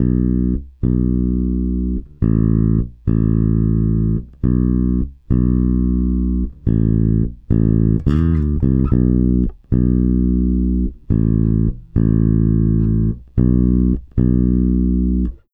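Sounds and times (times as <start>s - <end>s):
country bass bridge: 0.0s - 15.5s.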